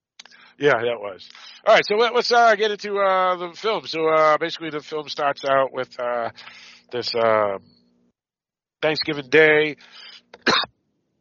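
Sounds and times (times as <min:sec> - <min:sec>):
speech: 0:00.6 - 0:07.8, 0:08.8 - 0:10.7
person coughing: 0:10.4 - 0:10.7.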